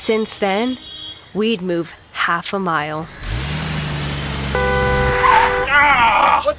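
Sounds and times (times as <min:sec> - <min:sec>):
speech: 0:00.0 - 0:03.3
car engine rumbling: 0:03.0 - 0:06.2
car horn sustained blast: 0:04.6 - 0:05.8.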